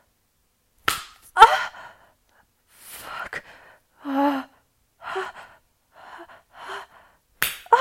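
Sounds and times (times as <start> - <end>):
hand slapping the clit: 0.8 - 1.3, 7.4 - 7.7.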